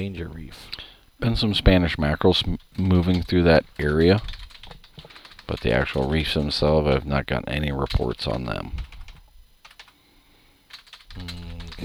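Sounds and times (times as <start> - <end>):
speech: 0.0 - 4.4, 5.5 - 8.9, 11.2 - 11.8
typing on a computer keyboard: 2.5 - 10.0, 10.7 - 11.8.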